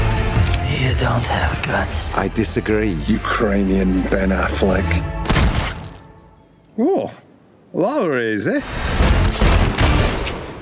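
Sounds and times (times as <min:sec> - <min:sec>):
speech: 0:00.8 - 0:05.2, 0:06.8 - 0:08.9
rapid gunfire in a comedy film scene: 0:09.0 - 0:10.2.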